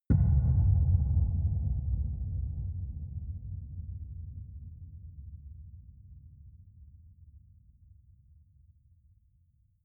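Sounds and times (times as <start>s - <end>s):
hollow sub bass impact: 0.1s - 6.0s.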